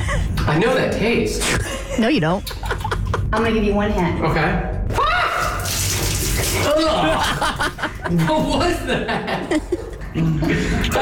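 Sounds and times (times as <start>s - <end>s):
speech: 0.5s - 2.7s, 3.3s - 4.7s, 6.7s - 11.0s
people giggling: 1.4s - 3.3s, 6.7s - 11.0s
liquid pouring and splashing: 5.4s - 7.1s.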